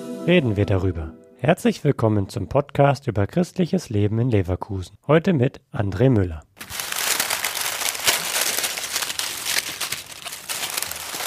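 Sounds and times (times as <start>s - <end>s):
speech: 0.2s - 6.5s
dry twigs of woven nest rustling on parquet floor of chapel in Germany: 6.6s - 11.2s.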